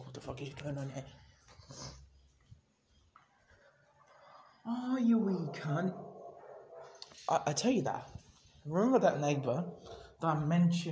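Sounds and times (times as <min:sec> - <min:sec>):
speech: 0:00.2 - 0:01.9, 0:04.7 - 0:06.0, 0:07.3 - 0:10.9
sharp dog bark: 0:05.1 - 0:07.0.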